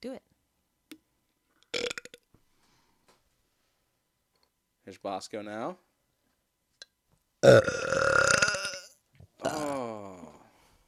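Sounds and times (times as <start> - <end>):
faint room noise: 0.0 - 10.8
person burping after drinking root beer: 1.7 - 2.2, 7.4 - 10.4
speech: 4.9 - 5.9, 7.4 - 8.0.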